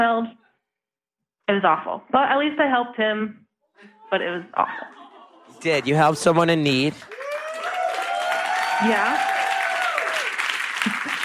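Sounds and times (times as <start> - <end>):
speech: 0.0 - 0.4, 1.5 - 5.0, 5.6 - 7.2, 8.8 - 9.3
laughter: 3.8 - 7.8, 10.6 - 11.2
small group applauding: 5.0 - 11.2.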